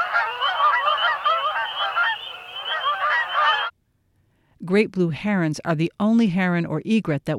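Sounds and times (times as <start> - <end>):
flock of Canada geese honking in a salt marsh in winter: 0.0 - 3.7
speech: 4.7 - 7.3.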